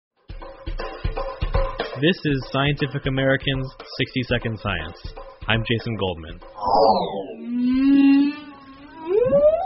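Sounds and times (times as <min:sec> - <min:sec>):
speech: 0:02.0 - 0:08.1
male humpback whale singing: 0:06.6 - 0:09.6.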